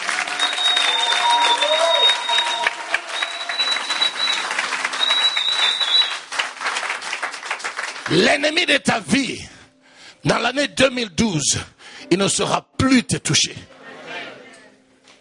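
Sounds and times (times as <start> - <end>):
audience applauding: 0.0 - 8.4
high whistling tones above the crowd: 0.3 - 6.3
speech: 8.1 - 9.6, 10.2 - 13.7.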